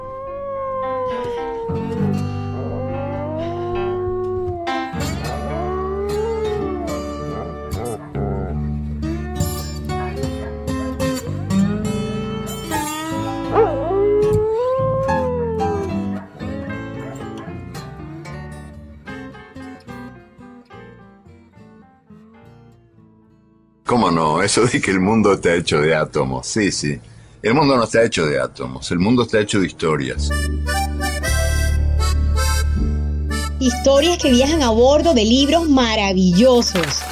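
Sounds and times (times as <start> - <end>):
dog howling along to blues music: 0.0 - 16.3
blues tune with guitar and bass: 0.0 - 23.8, 30.2 - 36.3
speech: 24.2 - 30.8, 33.6 - 37.1.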